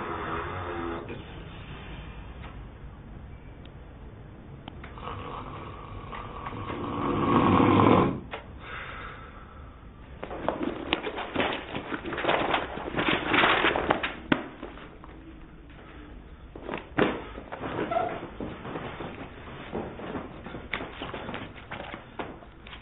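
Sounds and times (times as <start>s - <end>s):
person snoring loudly in sleep: 0.0s - 1.2s, 4.9s - 8.3s
steady hissy background: 0.0s - 22.8s.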